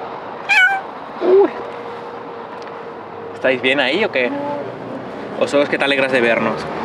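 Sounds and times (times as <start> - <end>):
cat meowing: 0.4 - 0.9
speech: 3.4 - 4.7, 5.4 - 6.8.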